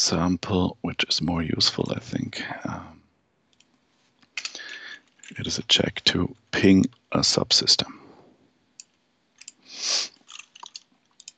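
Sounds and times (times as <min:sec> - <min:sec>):
speech: 0:00.0 - 0:03.0, 0:05.3 - 0:08.0, 0:09.8 - 0:10.1
computer keyboard keys being typed: 0:10.3 - 0:11.3.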